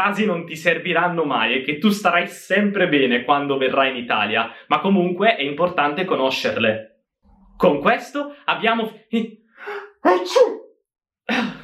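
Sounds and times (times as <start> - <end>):
speech: 0.0 - 6.9, 7.6 - 9.4, 10.0 - 10.6, 11.3 - 11.6
person sneezing: 9.7 - 10.6.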